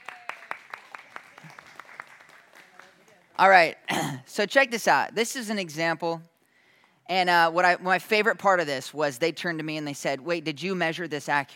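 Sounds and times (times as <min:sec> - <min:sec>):
small audience clapping: 0:00.0 - 0:03.4
speech: 0:03.4 - 0:06.3, 0:07.1 - 0:11.5.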